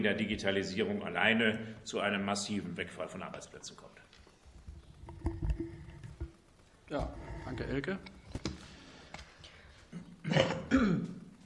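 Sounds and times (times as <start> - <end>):
speech: 0.0 - 4.1, 6.9 - 8.2, 9.9 - 11.1
person clearing throat: 9.9 - 11.3
person coughing because of pollen: 10.2 - 11.2.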